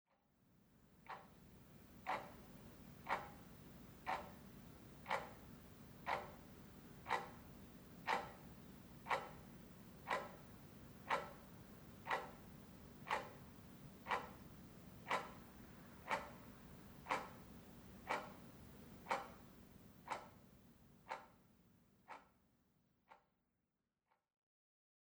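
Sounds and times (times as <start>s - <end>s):
kitchen clock ticking: 2.1s - 19.5s, 20.1s - 20.4s.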